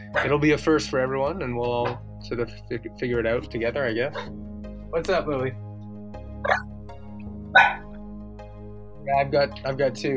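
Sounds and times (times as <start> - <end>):
speech: 0.2 - 5.6, 7.5 - 7.8, 9.0 - 10.1
dog barking: 6.4 - 6.6, 7.6 - 7.9.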